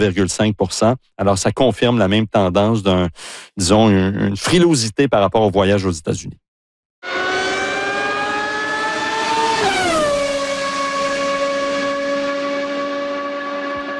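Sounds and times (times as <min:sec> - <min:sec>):
speech: 0:00.0 - 0:06.4, 0:07.0 - 0:07.3
Formula 1 racing car engine at the Canadian Grand Prix open day: 0:07.0 - 0:13.9.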